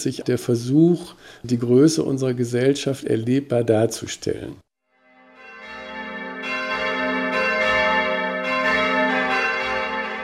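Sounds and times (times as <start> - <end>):
speech: 0.0 - 4.6
large church bell tolling: 5.0 - 10.2.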